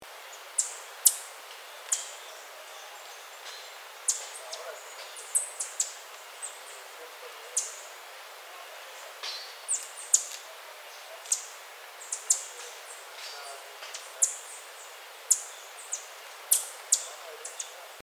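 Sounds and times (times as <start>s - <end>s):
Multicolored Tanager calling: 0.6s - 7.9s, 8.6s - 17.8s.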